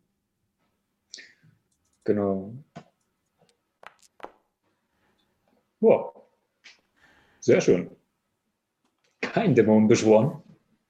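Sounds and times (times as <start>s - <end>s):
speech: 2.1s - 2.7s, 5.8s - 6.2s, 7.4s - 8.0s, 9.3s - 10.4s
dice clattering: 3.8s - 4.4s.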